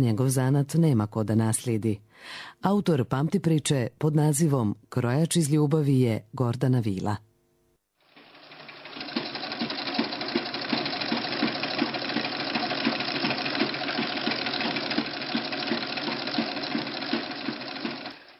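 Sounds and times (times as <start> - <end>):
speech: 0.0 - 7.3
hundred-year-old tailor's sewing machine running: 8.0 - 18.3.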